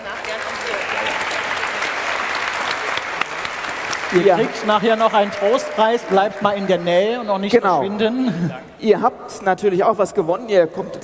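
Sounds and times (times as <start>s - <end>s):
audience applause: 0.0s - 8.0s
speech: 4.1s - 11.0s.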